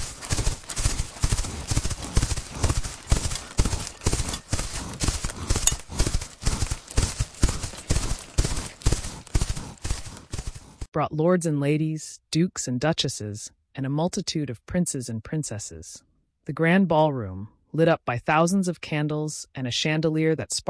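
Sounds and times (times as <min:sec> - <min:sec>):
hooves of horses pulling carriages clip-clopping: 0:00.0 - 0:10.9
speech: 0:11.0 - 0:20.6.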